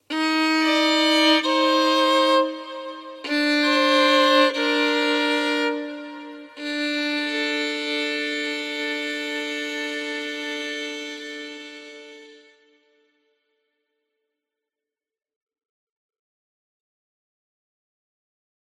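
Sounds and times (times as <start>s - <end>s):
dramatic documentary violin music: 0.0s - 12.8s.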